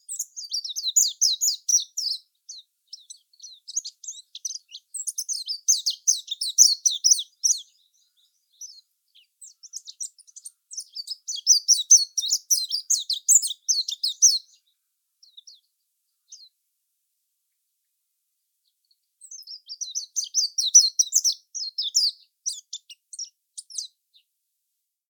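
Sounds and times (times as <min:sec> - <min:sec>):
Zosterops japonicus twittering: 0:00.1 - 0:02.2, 0:02.9 - 0:14.6, 0:19.2 - 0:23.9.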